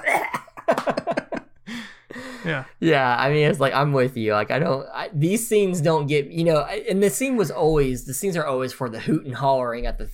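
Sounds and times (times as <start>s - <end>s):
person faking a coughing fit: 0.0s - 0.6s
drawn-out raspy gasp: 1.6s - 2.7s
speech: 2.4s - 10.1s.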